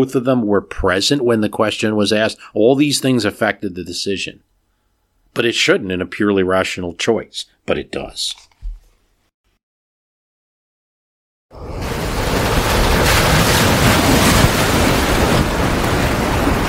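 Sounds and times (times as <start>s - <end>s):
speech: 0.0s - 4.5s, 5.3s - 8.5s, 11.5s - 11.7s
crashing waves on a rough stormy ocean: 11.5s - 16.6s
loud roaring wind on a rough stormy ocean: 11.6s - 16.6s.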